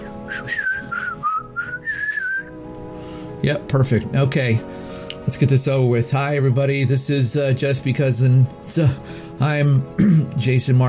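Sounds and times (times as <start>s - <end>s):
person whistling a short wavering melody: 0.0s - 2.6s
speech: 3.4s - 10.8s.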